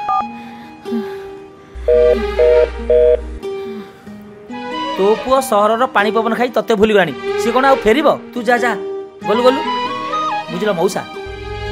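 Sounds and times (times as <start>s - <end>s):
telephone keypad tones as a number is dialed: 0.0s - 0.2s
steady tonal background: 0.5s - 4.5s
speech: 2.1s - 3.3s, 5.0s - 9.8s, 10.5s - 11.2s.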